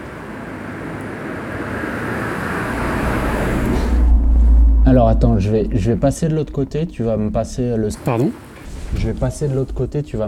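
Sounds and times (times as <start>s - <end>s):
car driving by with rumbling engine and tire noise: 0.1s - 7.7s
speech: 5.0s - 10.2s.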